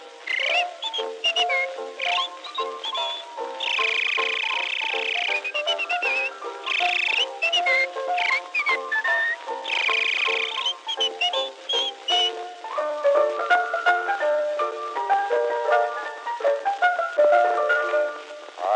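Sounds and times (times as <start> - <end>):
steady instrumental accompaniment: 0.0 - 18.7
person whistling a lively warbling tune: 0.3 - 12.5.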